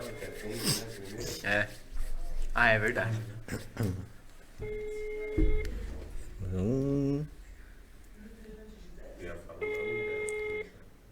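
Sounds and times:
speech: 0.4s - 0.8s, 1.4s - 1.8s, 2.6s - 5.7s, 6.5s - 7.4s
telephone ringing during a call: 4.6s - 5.6s, 9.6s - 10.7s.

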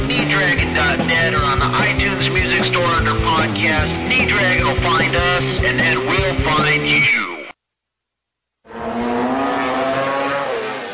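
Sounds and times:
speech: 0.4s - 7.4s
road-racing motorcycle engine revving past with high-pitched whine: 8.7s - 10.9s.

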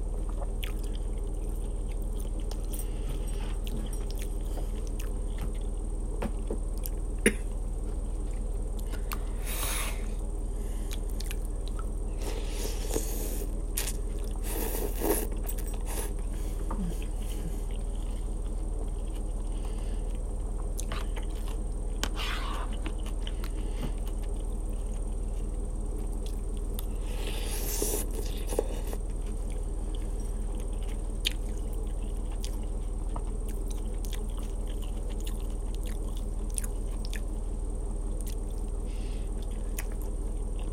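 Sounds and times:
low hum: 0.0s - 40.7s
slurping buffalo chicken meatball noodle soup: 12.3s - 16.2s, 27.1s - 29.0s.

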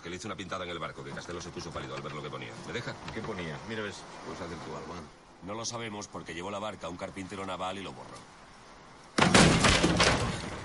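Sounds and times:
speech: 0.1s - 8.4s
door kicked off its hinges with a crashing bang: 9.2s - 10.6s.

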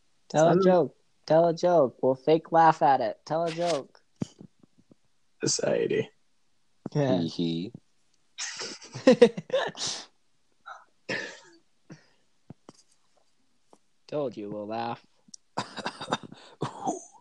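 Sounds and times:
speech: 0.3s - 4.4s, 5.4s - 6.2s, 6.9s - 7.8s, 8.4s - 10.1s, 14.1s - 16.1s
harsh coughing: 11.1s - 12.0s, 15.6s - 17.1s.

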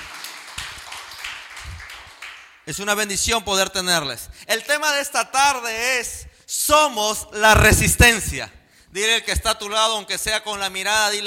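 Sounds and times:
church audience clapping to welcome visitors: 0.0s - 2.5s
speech: 2.7s - 11.2s.

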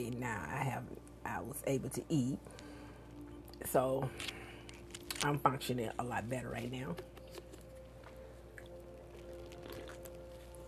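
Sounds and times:
speech: 0.0s - 2.7s, 3.6s - 4.4s, 5.2s - 7.1s
steady low hum: 0.0s - 10.6s
sipping tea: 2.5s - 5.3s, 7.0s - 10.6s.

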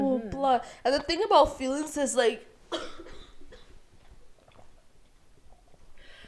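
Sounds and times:
speech: 0.3s - 3.2s
person coughing: 2.7s - 3.7s.

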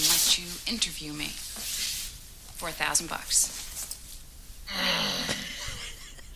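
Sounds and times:
speech: 0.3s - 1.7s, 2.6s - 3.6s, 4.7s - 5.0s
man's odd strained wheezing groan: 4.7s - 5.6s.

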